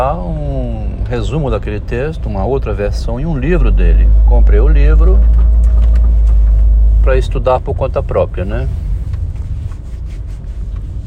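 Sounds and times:
speech: 0.0 - 0.4, 1.1 - 5.4, 7.0 - 8.9
low-frequency rumble inside a parked car in a parking garage: 0.0 - 11.0.

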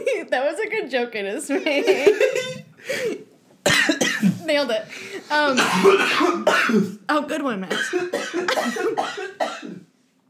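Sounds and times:
speech: 0.2 - 3.3, 4.4 - 9.4
man coughing harshly: 2.1 - 4.4, 5.6 - 7.0, 7.7 - 9.9.

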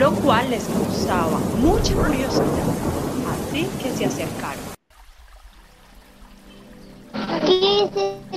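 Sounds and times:
water churning, rushing and splashing: 0.0 - 7.1
speech: 0.2 - 4.7.

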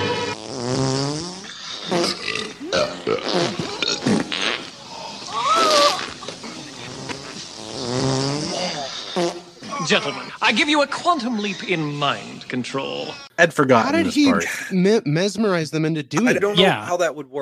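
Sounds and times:
fart noises: 0.0 - 10.4
several people belching: 1.9 - 11.8
speech: 3.1 - 3.6, 9.9 - 17.4.

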